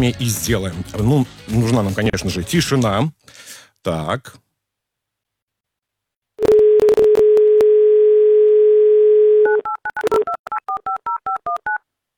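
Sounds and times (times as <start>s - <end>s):
speech: 0.0s - 4.4s
telephone dial tone: 6.4s - 11.8s.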